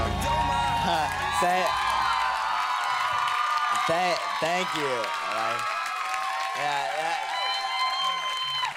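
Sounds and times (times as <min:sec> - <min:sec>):
audience applause: 0:00.1 - 0:08.7
voices or a tonal sound: 0:00.3 - 0:08.7
speech: 0:03.9 - 0:05.8, 0:06.5 - 0:07.3.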